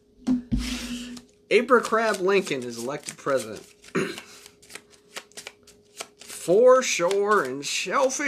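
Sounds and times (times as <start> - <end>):
playing cards being shuffled: 0.7 - 8.2
speech: 1.5 - 4.2, 6.5 - 8.2.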